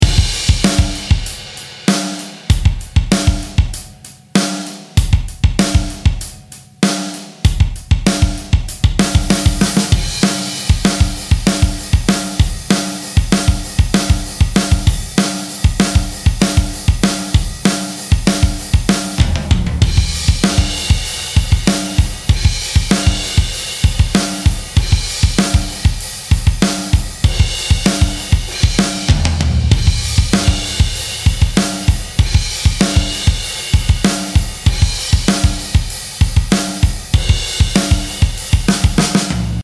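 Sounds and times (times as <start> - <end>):
low-cut drums: 0.0 - 39.6.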